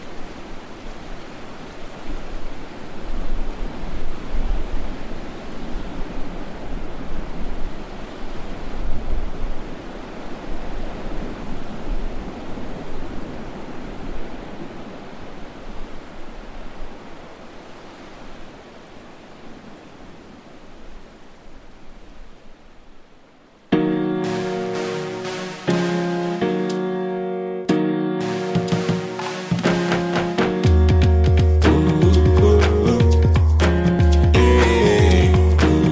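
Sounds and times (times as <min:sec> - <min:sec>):
ocean surf on an empty beach on a cloudy weekday: 0:00.0 - 0:23.0, 0:23.6 - 0:35.9.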